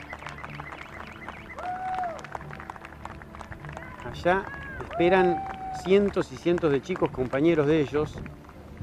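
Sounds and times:
high whistle: 0.0 - 2.1
crowd applauding for female race drivers: 0.0 - 8.8
speech: 4.1 - 8.4.

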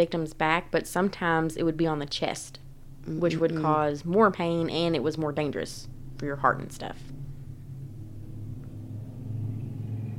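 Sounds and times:
speech: 0.0 - 7.2
motorcycle gang driving past a house in nice weather: 7.0 - 10.1.

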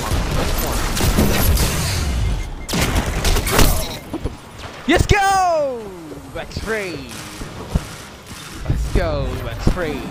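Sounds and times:
noisy mix of multiplayer shooter video game action: 0.0 - 10.0
speech: 4.9 - 7.2, 9.0 - 10.0.

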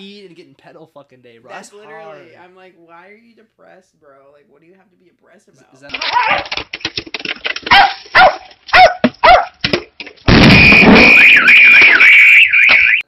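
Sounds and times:
speech: 0.0 - 7.1
dog barking: 6.0 - 6.5, 7.6 - 9.6
high warbling tone: 10.3 - 13.0
loud sustained broadband noise: 10.3 - 13.0.

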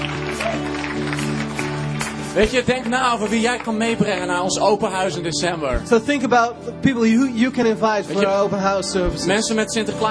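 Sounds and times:
audience applause: 0.0 - 4.6
speech: 2.4 - 10.0.

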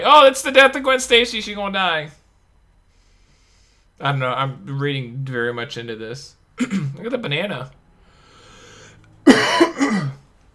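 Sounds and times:
speech: 0.0 - 2.2, 4.0 - 7.8
person coughing: 6.6 - 7.0, 9.2 - 10.3.

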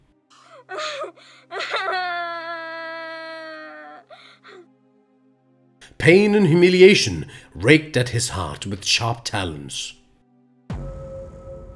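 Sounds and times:
little girl screaming and crying after a gag is removed: 0.4 - 4.6
speech: 6.0 - 10.0.

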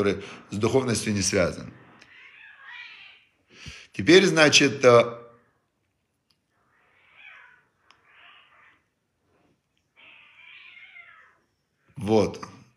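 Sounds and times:
speech: 0.0 - 1.8, 3.6 - 5.2, 12.0 - 12.5
cats yowling and caterwauling while fighting on a balcony: 2.0 - 3.4, 6.6 - 9.0, 9.9 - 11.6.

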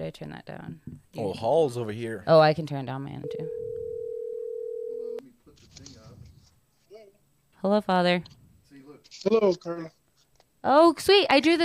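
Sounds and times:
speech: 0.1 - 3.6, 7.6 - 8.4, 9.1 - 10.0, 10.6 - 11.6
loud steady phone ringing tone over a speakerphone: 3.2 - 5.2.

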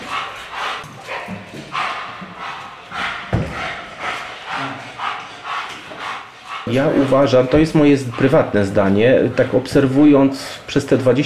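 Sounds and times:
police dog barking aggressively: 0.0 - 8.9
speech: 6.7 - 11.2.

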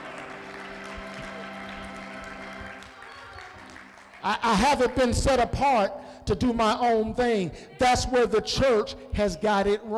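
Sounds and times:
audience clapping: 0.0 - 5.2
speech: 4.2 - 9.9.

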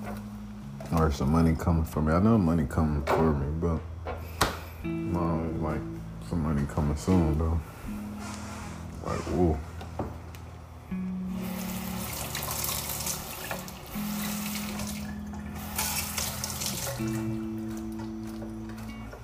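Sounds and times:
speech: 0.9 - 3.9, 4.8 - 8.4, 9.0 - 9.7
tap water running into a sink while washing off ice cream: 11.4 - 18.5.

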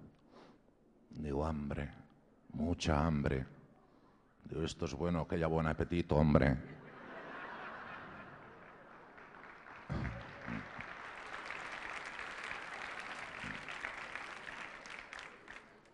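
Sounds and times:
speech: 1.2 - 3.6, 4.4 - 6.8
laughter: 6.7 - 11.0
crowd clapping: 7.6 - 15.9.

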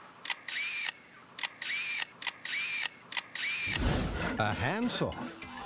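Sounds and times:
lyrebird imitating a photographer's motorized camera shutter: 0.3 - 3.8
speech: 4.4 - 5.4.

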